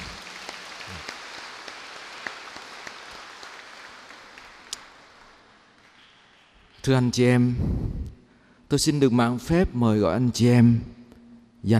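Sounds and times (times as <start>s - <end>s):
large crowd applauding: 0.0s - 6.8s
speech: 6.8s - 8.0s, 8.7s - 11.0s.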